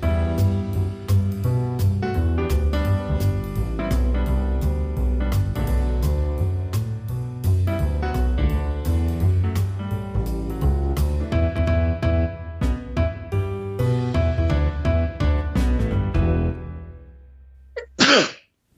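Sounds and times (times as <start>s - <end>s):
melodic instrumental music: 0.0s - 17.2s
person sneezing: 17.8s - 18.4s.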